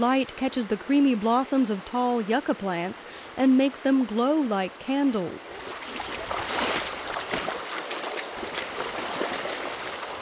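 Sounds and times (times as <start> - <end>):
speech: 0.0 - 5.9
steady rush of flowing creek water: 0.0 - 10.1
water sloshing and splashing from wading through a shallow creek: 5.6 - 10.1.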